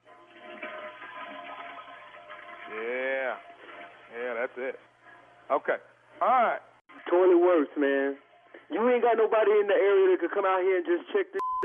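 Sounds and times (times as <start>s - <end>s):
toilet flushing: 0.0s - 5.4s
speech: 2.7s - 3.0s, 4.2s - 4.9s, 5.5s - 11.6s.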